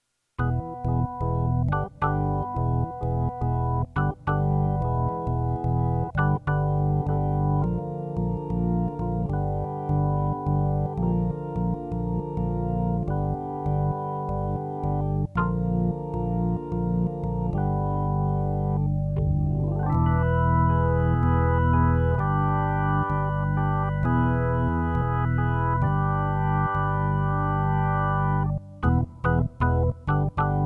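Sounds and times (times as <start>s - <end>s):
organ prelude: 0.4s - 30.6s.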